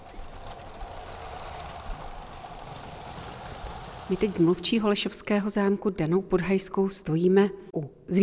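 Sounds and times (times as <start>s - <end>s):
LEGO TGV toy train set humming and rattling on its track: 0.0s - 4.7s
speech: 4.1s - 8.2s.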